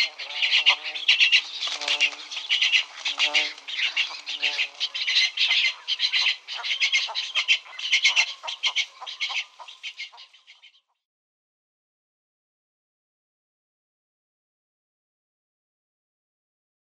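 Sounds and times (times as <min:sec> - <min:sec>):
cattle egret nestlings rasping chorus: 0:00.0 - 0:10.9
lower tonal nasal cattle egret nestling calls: 0:00.0 - 0:11.0.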